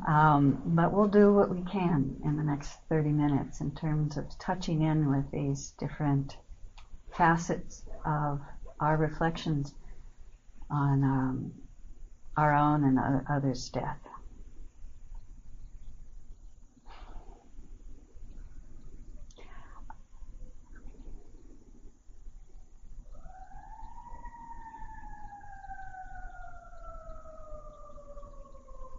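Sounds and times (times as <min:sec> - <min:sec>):
speech: 0:00.0 - 0:06.4, 0:07.1 - 0:09.8, 0:10.7 - 0:11.6, 0:12.4 - 0:14.1
emergency vehicle siren passing: 0:23.0 - 0:28.9.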